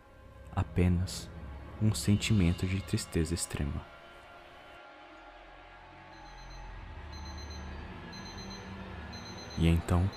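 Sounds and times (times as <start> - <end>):
speech: 0.8 - 4.0, 9.6 - 10.1
alarm clock ringing in high electronic beeps: 6.2 - 10.1.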